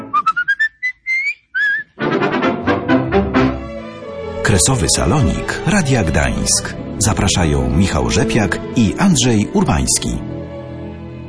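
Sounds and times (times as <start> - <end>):
person whistling a short bright tune: 0.0 - 2.0
full instrumental music: 0.0 - 11.2
speech: 4.5 - 10.4.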